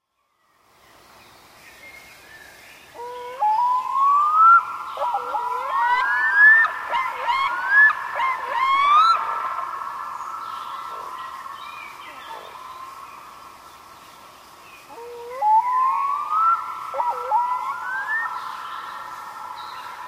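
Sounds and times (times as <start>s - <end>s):
red-throated loon calling: 3.0s - 12.8s, 14.9s - 19.0s.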